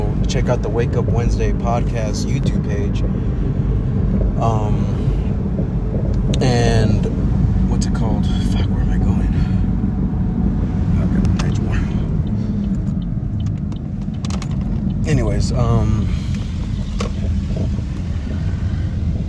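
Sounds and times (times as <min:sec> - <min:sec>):
car cabin rumble with road and engine drone: 0:00.0 - 0:19.2
speech: 0:00.3 - 0:05.7, 0:06.4 - 0:07.2, 0:07.8 - 0:08.9, 0:15.1 - 0:16.2
light clicks and rattles: 0:12.2 - 0:15.1.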